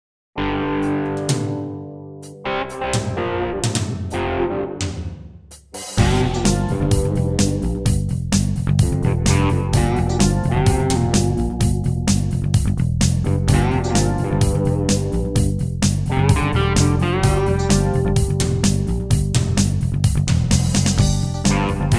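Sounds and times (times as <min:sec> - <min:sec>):
pop rock music: 0:00.4 - 0:21.9.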